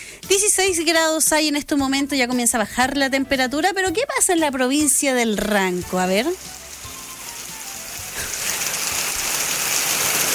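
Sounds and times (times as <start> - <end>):
speech: 0.3 - 6.6
heavy rain in Crucero, Río Bueno commune, Ranco province: 6.4 - 10.3.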